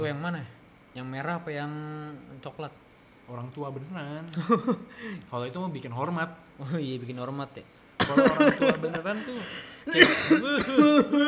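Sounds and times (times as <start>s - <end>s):
speech: 0.0s - 11.2s
laughter: 8.0s - 11.2s
person giving theatrical put-on coughs: 8.0s - 11.2s.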